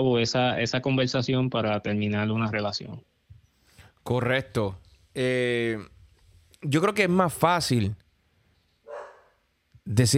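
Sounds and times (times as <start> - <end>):
speech: 0.0 - 3.2, 4.0 - 6.0, 6.6 - 8.0, 9.9 - 10.1
dog barking: 8.8 - 9.4.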